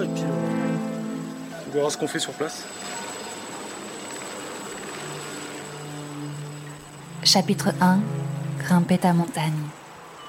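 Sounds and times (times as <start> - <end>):
thin high helicopter turbine whine: 0.0 - 9.5
helicopter rotor roar: 1.6 - 8.6
speech: 1.7 - 3.0, 7.3 - 9.8.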